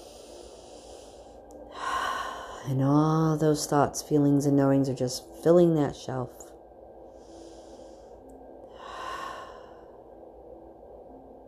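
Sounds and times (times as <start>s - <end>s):
strong deep breath during a meditation: 0.0s - 2.6s, 7.1s - 10.1s
speech: 2.6s - 6.5s.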